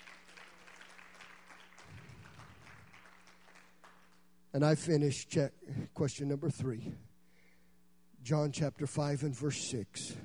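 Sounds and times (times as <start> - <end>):
large crowd applause: 0.0 - 4.2
speech: 4.5 - 7.1, 8.2 - 10.2.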